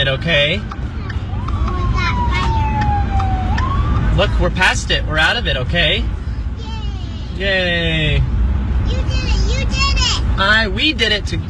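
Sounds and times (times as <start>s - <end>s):
heavy constant rumble of road traffic: 0.0s - 11.4s
speech: 0.1s - 0.8s, 4.2s - 6.2s, 7.4s - 9.0s, 9.7s - 11.4s
emergency vehicle siren wailing: 0.8s - 5.0s.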